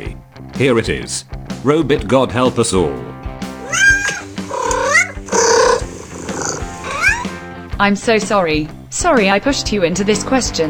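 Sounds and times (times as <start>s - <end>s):
speech: 0.2s - 3.8s, 7.8s - 10.6s
cat meowing: 3.6s - 7.4s.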